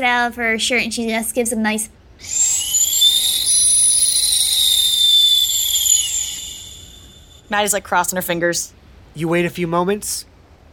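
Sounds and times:
speech: 0.0s - 2.4s, 7.5s - 10.3s
whistle being blown: 2.2s - 7.5s.

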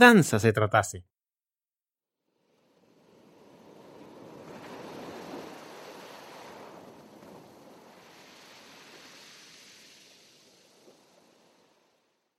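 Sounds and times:
speech: 0.0s - 1.2s
sea waves surging beneath a rocking boat: 2.5s - 12.0s.

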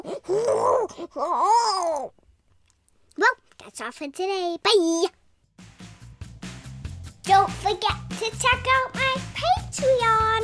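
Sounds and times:
person's voice imitating a triconodont cry: 0.0s - 2.1s
speech: 0.9s - 2.2s, 3.2s - 5.2s, 7.2s - 10.4s.

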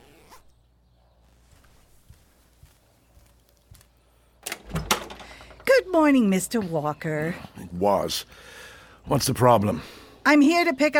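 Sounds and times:
trouser zipper pulled up as someone puts on their pants: 0.0s - 0.5s
soft knocks and shuffles: 1.2s - 4.4s
speech: 6.0s - 10.9s.

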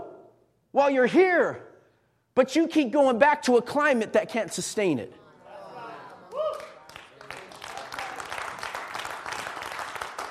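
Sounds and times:
speech: 0.8s - 1.7s, 2.4s - 5.2s
congregation applauding: 5.9s - 10.3s.

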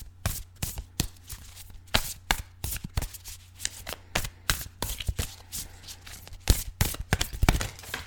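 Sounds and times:
deck of affirmation cards being shuffled: 0.2s - 8.0s.

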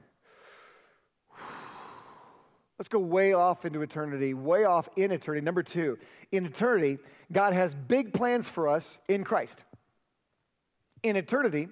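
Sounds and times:
big deep breaths: 0.0s - 2.8s, 6.0s - 6.3s
speech: 2.8s - 9.7s, 11.0s - 11.7s.

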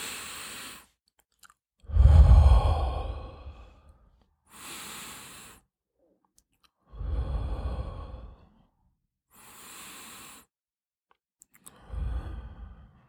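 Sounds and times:
person taking slow deep breaths to calm anxiety: 0.0s - 0.9s, 1.9s - 5.7s, 6.8s - 10.5s, 11.7s - 13.0s.

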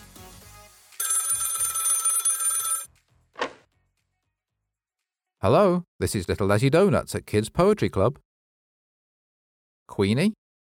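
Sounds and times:
telephone bell ringing: 1.0s - 2.9s
speech: 5.4s - 8.3s, 9.9s - 10.4s.

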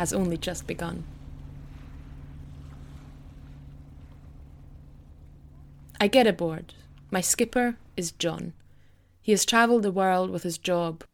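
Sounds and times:
speech: 0.0s - 1.2s, 6.0s - 8.6s, 9.2s - 11.1s
constant wash of water: 0.0s - 8.2s
boat engine drone approaching a jetty: 0.0s - 10.8s.

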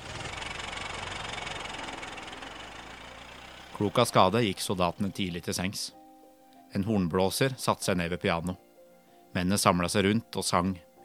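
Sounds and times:
car engine rumbling with a faint rhythmic knock: 0.0s - 5.2s
speech: 3.8s - 6.0s, 6.7s - 8.6s, 9.3s - 11.0s.

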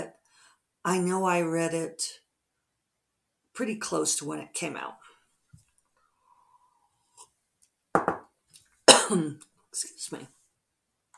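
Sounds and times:
speech: 0.8s - 2.2s, 3.6s - 5.1s, 9.1s - 10.4s
faint breaths: 6.1s - 7.2s
harsh coughing fit after breathing in coffee: 8.9s - 9.3s.

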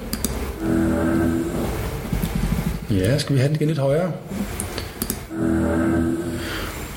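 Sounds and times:
deep two-tone vehicle horn blast: 0.6s - 2.1s, 5.3s - 6.8s
speech: 2.9s - 4.6s, 5.4s - 6.6s.

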